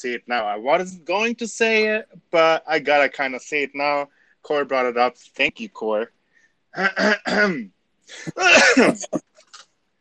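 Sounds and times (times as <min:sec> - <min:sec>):
speech: 0:00.0 - 0:06.2, 0:06.8 - 0:09.3
person clearing throat with something caught in the throat: 0:06.8 - 0:09.2.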